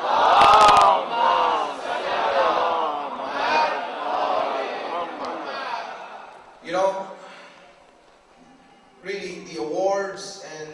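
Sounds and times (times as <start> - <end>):
crowd loudly reciting salawat in unison: 0.0 - 6.5.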